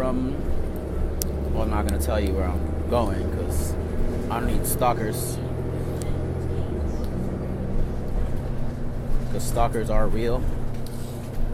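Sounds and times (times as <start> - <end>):
commuter bus or GO train interior rumble: 0.0 - 11.5
faint rattles: 0.0 - 11.5
speech: 0.1 - 0.5, 1.6 - 5.4, 9.4 - 10.6.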